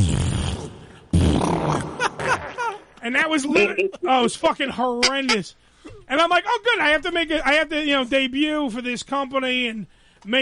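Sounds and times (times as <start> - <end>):
voice imitating a fart echoing in a hotel bathroom: 0.0 - 2.7
speech: 3.1 - 10.3.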